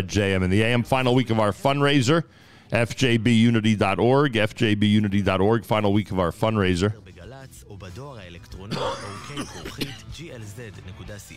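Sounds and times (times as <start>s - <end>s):
speech: 0.0s - 7.1s, 7.7s - 11.3s
short rough throat clearing: 8.7s - 10.1s
cough: 8.7s - 10.2s.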